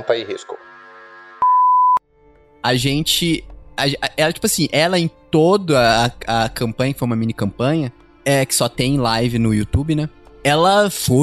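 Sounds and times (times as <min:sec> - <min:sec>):
speech: 0:00.0 - 0:00.8, 0:02.6 - 0:11.2
loud electronic beep with a steady pure tone: 0:01.4 - 0:02.0.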